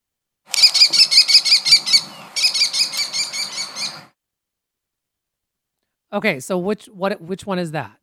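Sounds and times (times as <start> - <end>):
American kestrel calling: 0.5 - 4.1
speech: 6.1 - 8.0.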